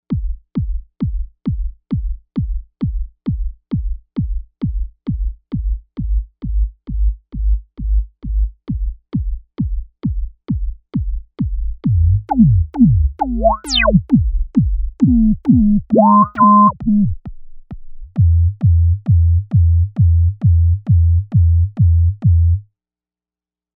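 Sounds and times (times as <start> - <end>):
kick drum loop on a synthesizer: 0.1 - 17.2, 17.9 - 22.6.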